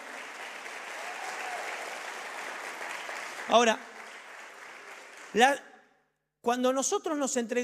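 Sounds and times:
audience applause: 0:00.0 - 0:05.4
speech: 0:03.5 - 0:03.9, 0:05.3 - 0:05.7, 0:06.4 - 0:07.6.

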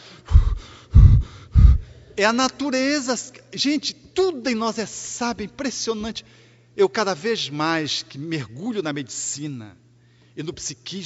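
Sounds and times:
angry huffs through the nose: 0:00.0 - 0:02.2
speech: 0:02.2 - 0:09.8, 0:10.4 - 0:11.0.

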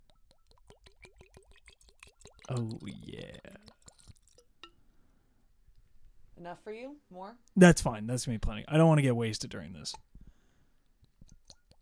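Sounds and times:
whiskey drips: 0:00.0 - 0:05.0
whiskey glugging out of a glass carafe into whiskey glasses: 0:00.7 - 0:04.8
speech: 0:02.5 - 0:03.7, 0:06.4 - 0:10.1.

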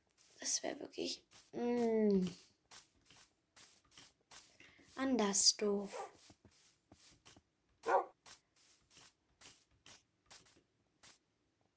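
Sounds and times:
speech: 0:00.4 - 0:02.8, 0:05.0 - 0:06.2
dogs barking short yaps while running: 0:05.9 - 0:06.2, 0:07.8 - 0:08.2.

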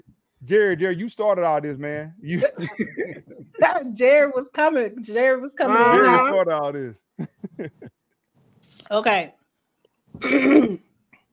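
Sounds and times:
speech: 0:00.4 - 0:07.9, 0:08.9 - 0:09.4, 0:10.2 - 0:10.8
laughter: 0:02.3 - 0:03.8, 0:07.2 - 0:08.0
person clearing throat: 0:10.2 - 0:10.9.

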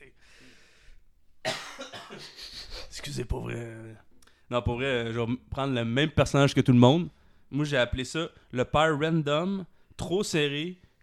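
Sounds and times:
person choking in a harsh coughing fit: 0:01.4 - 0:02.9
speech: 0:03.0 - 0:10.8.

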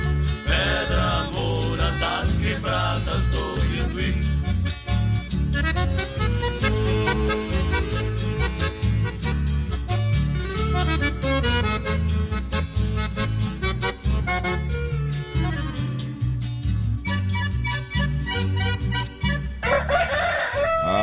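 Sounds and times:
busy music with bass and percussion: 0:00.0 - 0:20.1
grey rooster crowing: 0:19.6 - 0:21.0.

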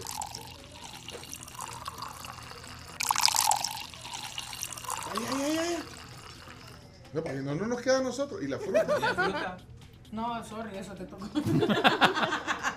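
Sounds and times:
homemade sangria pouring into a glass: 0:00.0 - 0:06.8
speech: 0:07.1 - 0:12.5
laughter: 0:08.5 - 0:09.6, 0:11.2 - 0:12.7.

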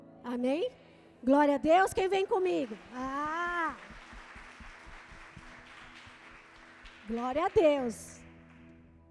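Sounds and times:
speech: 0:00.2 - 0:03.3, 0:07.1 - 0:08.2
audience applauding at a worship service: 0:02.3 - 0:08.9.

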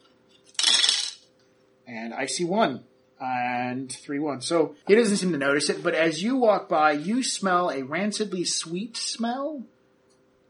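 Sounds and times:
handful of dice rolled across a table in a tabletop game: 0:00.5 - 0:01.2
speech: 0:01.9 - 0:09.8.

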